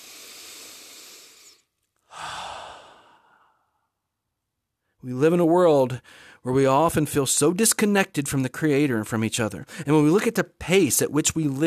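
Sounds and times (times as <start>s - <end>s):
deep breath in: 0.0s - 3.9s, 6.0s - 6.4s
speech: 5.0s - 11.6s.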